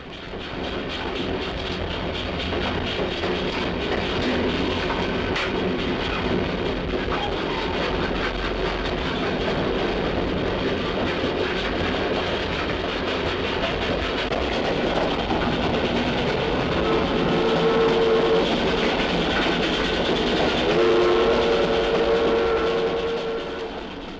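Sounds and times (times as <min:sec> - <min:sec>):
train pulled by a railroad engine rumbling along tracks: 0:00.0 - 0:24.1.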